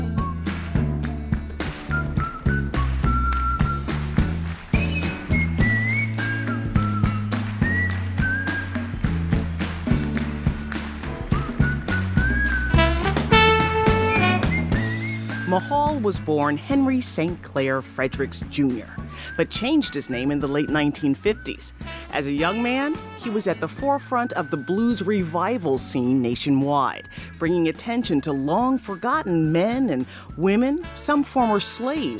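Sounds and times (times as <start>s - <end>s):
recorded song with steady beat and bass line: 0.0s - 15.5s
clear bright whistled melody: 0.0s - 16.1s, 18.9s - 25.5s
speech: 15.6s - 32.1s.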